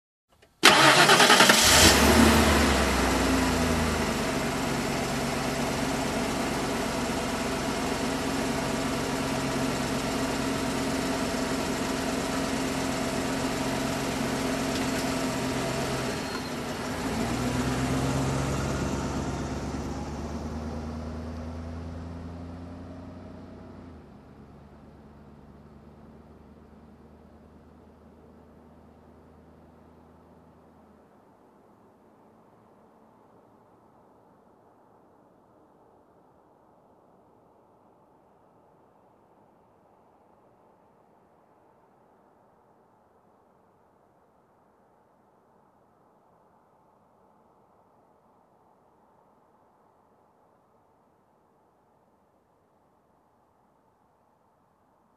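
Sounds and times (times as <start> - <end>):
car engine ignition: 0.3 - 21.6.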